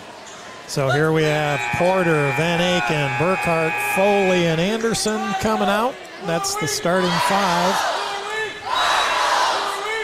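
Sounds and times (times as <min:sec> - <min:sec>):
speech: 0:00.7 - 0:08.0
large crowd chanting a cheer at basketball game in a gym: 0:01.1 - 0:05.4, 0:07.0 - 0:10.0.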